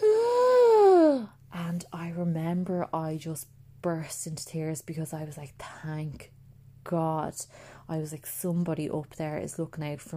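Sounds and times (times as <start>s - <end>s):
person imitating a woman's sharp gasp for air: 0.0s - 1.3s
speech: 2.5s - 10.1s.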